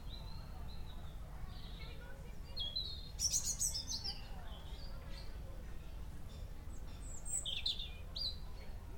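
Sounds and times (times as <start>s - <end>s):
birds singing in a garden: 0.0s - 5.4s, 6.2s - 8.8s.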